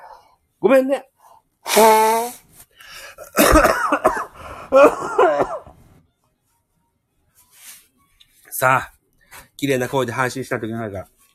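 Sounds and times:
speech: 0.6 - 2.4, 3.2 - 5.6, 8.6 - 9.0, 9.6 - 11.2
person blowing nose: 1.6 - 2.5.

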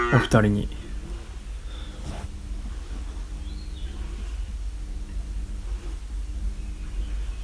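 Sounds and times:
speech: 0.1 - 0.8
steady low rumble: 0.2 - 7.4
forest birdsong chirps: 0.6 - 2.0, 3.1 - 7.4.

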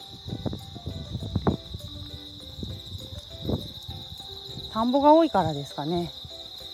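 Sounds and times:
bell crickets chirping: 0.0 - 6.7
speech: 4.8 - 6.2.

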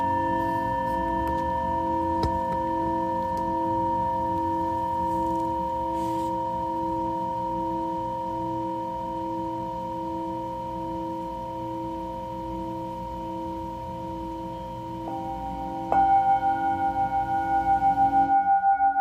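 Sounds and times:
Tibetan singing bowl: 0.0 - 19.0.

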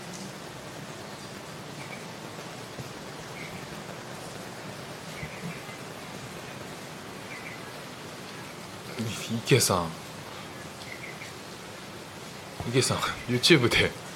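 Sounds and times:
faint scattered drips: 0.0 - 14.1
heavy thunderstorm rain in Singapore: 0.0 - 14.1
speech: 9.3 - 10.0, 12.7 - 14.0.

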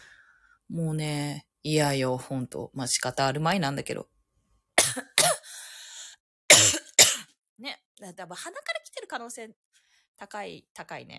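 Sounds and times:
speech: 0.7 - 4.2, 7.6 - 11.1
person coughing harshly: 4.8 - 5.5, 6.5 - 7.3
wheezy strained breath: 5.4 - 6.2.

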